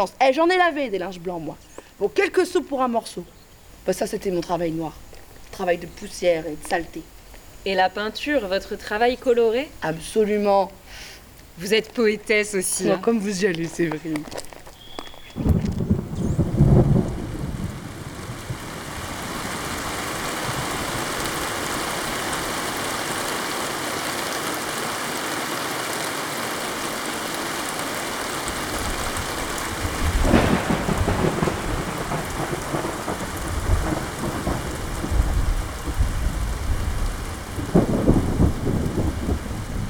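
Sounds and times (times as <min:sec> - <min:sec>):
speech: 0:00.0 - 0:14.6
steady rain shower hissing: 0:00.0 - 0:39.8
deep rolls of thunder rumbling: 0:15.2 - 0:23.4, 0:28.4 - 0:39.8.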